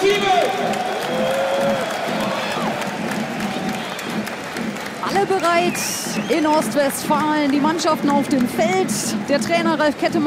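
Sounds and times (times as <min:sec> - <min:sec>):
large stadium crowd applauding and cheering: 0:00.0 - 0:10.2
speech: 0:05.3 - 0:10.2
whistles from a stadium crowd: 0:05.6 - 0:06.6.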